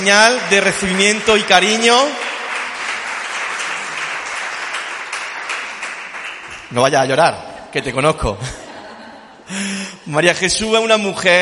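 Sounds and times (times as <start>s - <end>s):
speech: 0.0s - 2.3s, 6.7s - 8.6s, 9.5s - 11.4s
crowd applauding: 0.0s - 6.9s
laughter: 8.3s - 9.7s.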